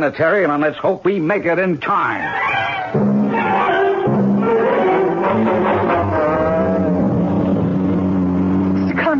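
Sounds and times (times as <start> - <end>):
speech: 0.0 - 3.2
sports car engine roaring while accelerating hard to high speed: 3.0 - 9.1.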